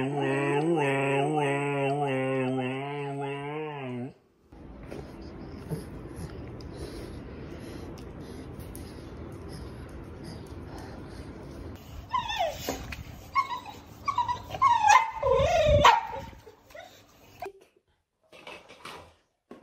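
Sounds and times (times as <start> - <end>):
dog whimpering and whining: 0.0 - 4.1, 12.0 - 17.0.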